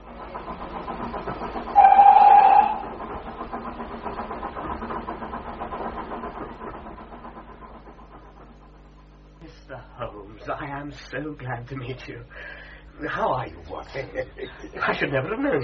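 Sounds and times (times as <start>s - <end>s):
steam train chugging: 0.0s - 15.6s
steam train whistle: 1.7s - 3.0s
speech: 10.9s - 15.6s
laughter: 13.8s - 15.6s.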